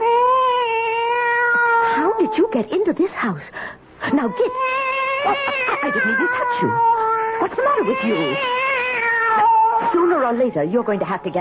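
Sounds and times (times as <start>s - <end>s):
cat meowing: 0.0s - 2.5s, 4.2s - 10.3s
speech: 2.3s - 8.7s, 9.8s - 11.3s.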